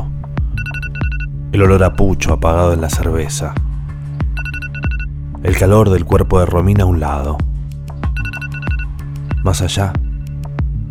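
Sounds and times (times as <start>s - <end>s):
phone alarm ringing with an electronic beeping melody: 0.5s - 1.3s, 4.3s - 5.1s, 8.1s - 10.4s
speech: 1.5s - 3.6s, 5.4s - 7.5s, 9.4s - 10.0s.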